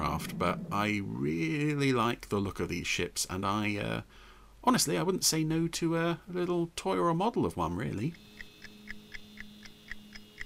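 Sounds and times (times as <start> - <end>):
steady low electrical hum: 0.0 - 10.4
speech: 0.2 - 8.3
time bomb ticking in a fast even rhythm: 8.1 - 10.4.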